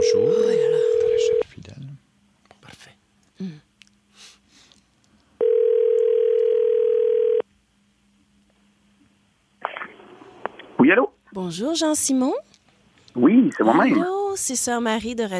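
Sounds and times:
telephone dial tone while dialing a call: 0:00.2 - 0:01.4, 0:05.4 - 0:07.4
speech: 0:11.4 - 0:12.5, 0:13.2 - 0:15.3.

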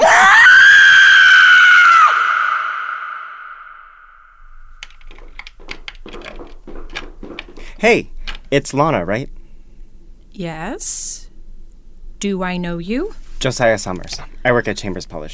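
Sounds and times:
woman screaming: 0:00.0 - 0:03.8
keyboard taps clicking: 0:04.8 - 0:07.6
speech: 0:07.8 - 0:09.4, 0:10.4 - 0:11.2, 0:12.2 - 0:15.3.

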